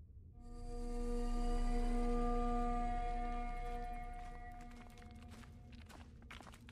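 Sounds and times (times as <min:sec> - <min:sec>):
dust distortion enemy humming drone in a mobile spell-casting game: 0:00.4 - 0:04.7.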